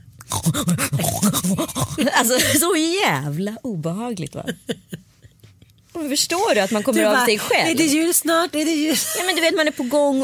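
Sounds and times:
person imitating pig-like snorting grunts: 0.3 - 2.2
speech: 0.5 - 5.0, 6.0 - 10.2.

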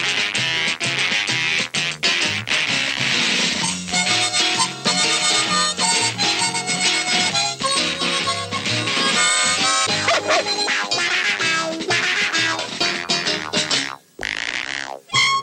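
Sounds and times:
British children's TV theme tune: 0.0 - 14.0, 15.1 - 15.4
dog-like yips: 10.0 - 11.4.

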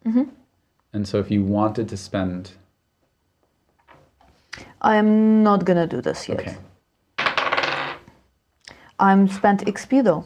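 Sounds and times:
speech: 0.1 - 2.6, 4.8 - 6.7, 9.0 - 10.2
dice tumbling across a hard tabletop: 7.2 - 8.2.

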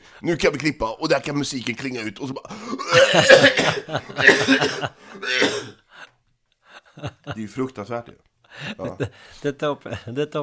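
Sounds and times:
speech: 0.2 - 5.8, 7.0 - 10.4
person coughing harshly: 2.6 - 5.8.

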